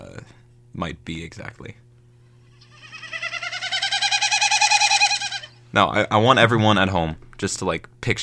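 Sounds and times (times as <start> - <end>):
faint low hum: 0.0 - 8.2
speech: 0.8 - 1.8, 5.7 - 8.2
Wilson's snipe winnowing: 2.6 - 5.6.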